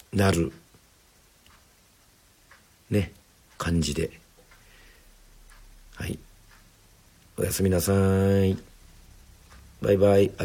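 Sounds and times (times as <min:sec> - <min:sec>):
clock ticking: 0:00.0 - 0:10.4
soft hiss: 0:00.0 - 0:10.4
speech: 0:00.1 - 0:00.6, 0:02.9 - 0:04.2, 0:06.0 - 0:06.2, 0:07.4 - 0:08.7, 0:09.8 - 0:10.4.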